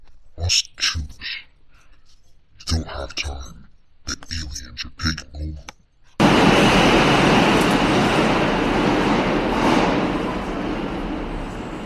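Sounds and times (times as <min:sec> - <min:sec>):
speech: 0:00.5 - 0:01.0, 0:03.1 - 0:03.6
loud steady rumble of a train at a station: 0:06.2 - 0:11.8.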